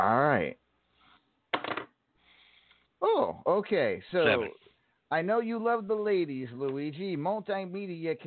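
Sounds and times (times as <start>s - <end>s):
speech: 0.4s - 0.6s, 3.0s - 8.2s
small die clattering across a hard tabletop: 1.5s - 1.9s.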